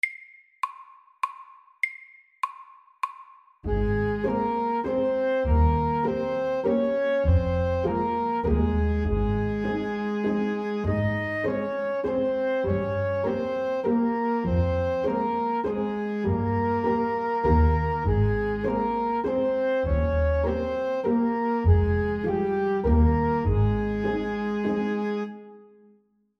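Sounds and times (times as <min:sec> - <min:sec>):
legato waltz: 0:03.7 - 0:25.7.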